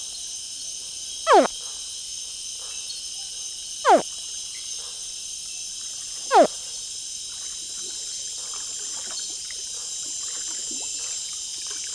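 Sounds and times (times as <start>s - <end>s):
baby crocodile sharp descending chirps: 1.3s - 1.5s
steady high-pitched insect hum on an Amazon riverbank at night: 1.3s - 1.5s, 6.3s - 6.5s.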